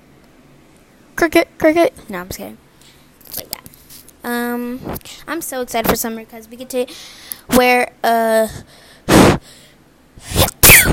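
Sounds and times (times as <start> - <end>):
speech: 1.2 - 2.6, 4.2 - 9.4
quiet breathing: 6.8 - 7.5, 8.4 - 9.9
woman sneezing directly into a microphone: 9.1 - 9.4, 10.2 - 10.9.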